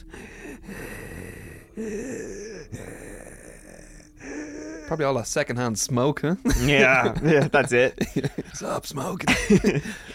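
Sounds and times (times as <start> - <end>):
voice imitating raspy struggling breathing: 0.0 - 5.1
speech: 1.8 - 3.0, 4.9 - 10.1
laughter: 6.5 - 8.6, 9.3 - 10.1.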